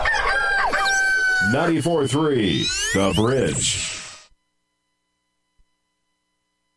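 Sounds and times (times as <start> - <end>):
rooster crowing: 0.0 - 1.8
speech: 1.4 - 4.0.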